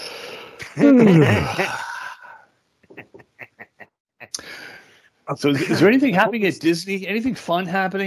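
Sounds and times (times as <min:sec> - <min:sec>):
speech: 0:00.8 - 0:01.8, 0:05.3 - 0:08.0
loud drawn-out human yawn with groaning pitch: 0:00.8 - 0:02.5.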